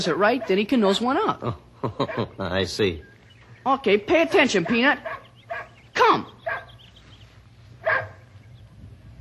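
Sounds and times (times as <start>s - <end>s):
speech: 0.0s - 6.4s
low steady hum: 0.0s - 9.1s
single sharp dog bark during obedience training: 0.3s - 0.7s, 2.0s - 2.3s, 4.6s - 5.8s, 6.4s - 6.8s, 7.8s - 8.3s
laughter: 1.4s - 2.7s.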